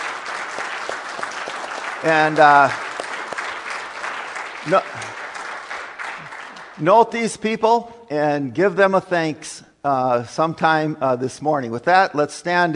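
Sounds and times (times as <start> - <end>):
audience applause: 0.0 - 7.0
speech: 2.0 - 2.8, 4.6 - 5.2, 6.8 - 12.7.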